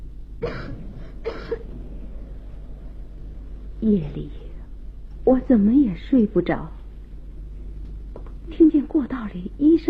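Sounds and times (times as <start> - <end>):
low steady hum: 0.0 - 9.8
gravely ill girl coughing: 0.4 - 1.7
speech: 3.8 - 4.4, 5.3 - 6.8, 8.5 - 9.8.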